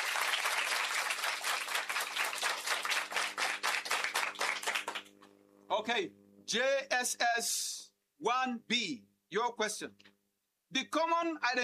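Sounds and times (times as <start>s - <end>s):
audience applauding a correct quiz answer: 0.0s - 5.1s
speech: 5.8s - 10.1s, 10.7s - 11.6s.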